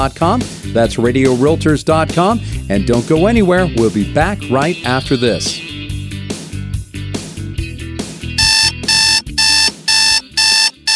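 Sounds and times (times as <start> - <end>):
speech: 0.0 - 5.7
alarm clock ringing: 8.4 - 10.9
shrill electronic beeping: 8.4 - 10.9.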